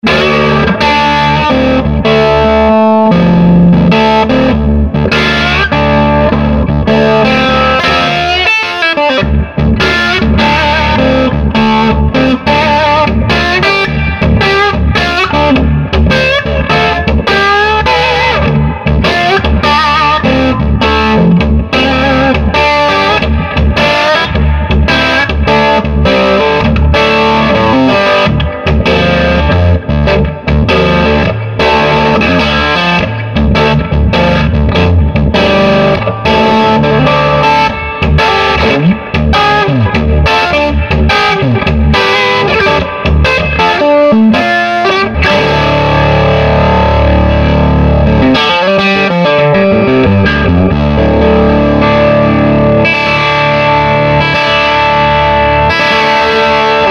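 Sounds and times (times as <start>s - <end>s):
SG electric guitar crunch through a Swart AST Pro amplifier: 0.0s - 56.8s.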